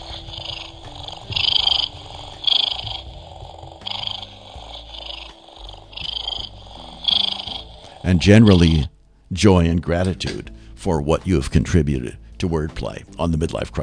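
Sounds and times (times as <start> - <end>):
cat purring: 0.0 - 10.7
speech: 8.1 - 13.8.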